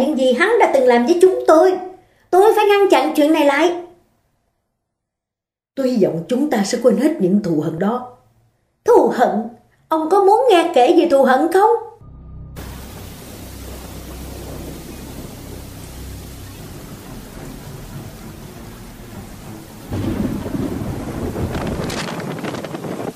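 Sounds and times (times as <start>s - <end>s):
speech: 0.2s - 3.9s, 5.8s - 8.2s, 8.9s - 11.9s
heavy rain pouring on the roof of a speeding car: 12.6s - 23.1s.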